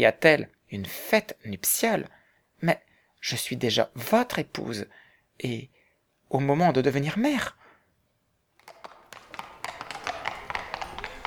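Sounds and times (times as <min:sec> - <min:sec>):
speech: 0:00.0 - 0:07.6
horses' hooves approaching along an avenue: 0:08.6 - 0:11.2.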